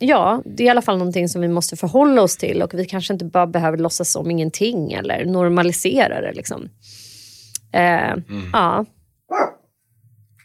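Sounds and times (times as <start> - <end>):
speech: 0.0 - 7.0, 7.7 - 9.6
small dog barking with a deep gruff bark: 9.3 - 9.7.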